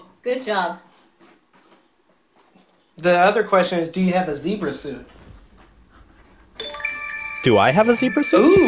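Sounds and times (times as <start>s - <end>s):
speech: 0.2s - 1.0s, 3.0s - 5.2s, 7.4s - 8.6s
small bell ringing with a clear metallic tone: 6.6s - 8.6s.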